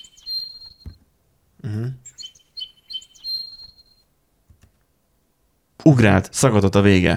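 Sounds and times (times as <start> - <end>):
bird singing high bright chirps and a whistled trill: 0.0 - 1.0, 2.0 - 4.1
speech: 1.6 - 2.0, 5.8 - 7.1.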